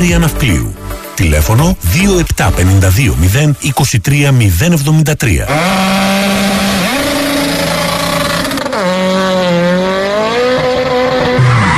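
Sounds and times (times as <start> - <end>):
speech: 0.0 - 6.4
car engine revving during a tire blowout: 5.4 - 11.7
car tires squealing and skidding as tire and rim give out: 5.5 - 11.7.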